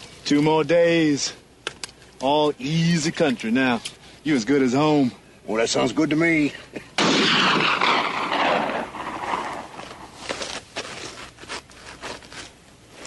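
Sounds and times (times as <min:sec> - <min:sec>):
speech: 0:00.3 - 0:01.4, 0:02.2 - 0:06.9
scattered crackling pops: 0:01.6 - 0:02.3, 0:07.0 - 0:10.7
nitroglycerin explosion with roaring rumble: 0:07.0 - 0:09.8
rifle shot: 0:07.0 - 0:10.1.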